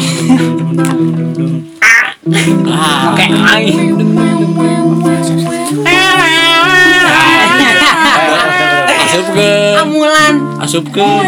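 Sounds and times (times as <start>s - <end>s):
laughter: 0.0s - 0.9s, 2.3s - 3.4s, 5.2s - 10.4s
speech: 0.3s - 1.7s, 2.3s - 4.7s, 10.7s - 11.2s
person imitating a crow with loud nasal caws: 1.8s - 2.2s, 5.7s - 9.3s.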